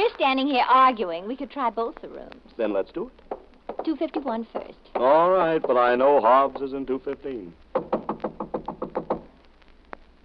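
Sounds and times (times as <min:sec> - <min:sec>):
speech: 0:00.1 - 0:03.2, 0:03.8 - 0:07.9
knocking on a hotel room door: 0:03.3 - 0:06.7, 0:07.7 - 0:09.3.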